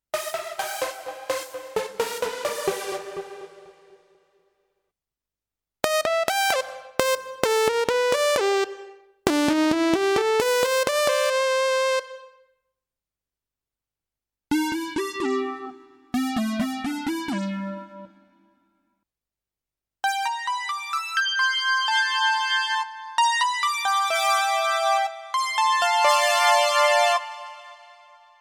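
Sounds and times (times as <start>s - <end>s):
Korg Pa1000 synthesizer: 0.1s - 4.2s, 5.8s - 12.4s, 14.5s - 18.4s, 20.0s - 28.4s.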